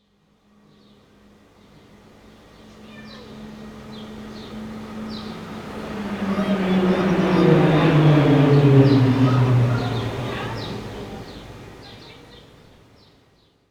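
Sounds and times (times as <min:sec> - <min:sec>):
distant plane: 0:02.6 - 0:12.3.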